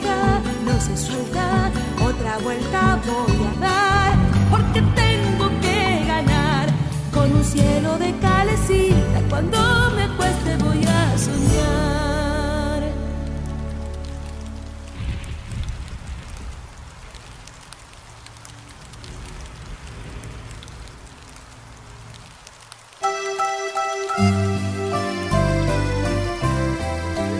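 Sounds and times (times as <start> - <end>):
bright instrumental music: 0.0 - 15.1, 23.0 - 27.3
rain pattering on a hard surface: 0.0 - 27.3
speech: 0.8 - 1.6.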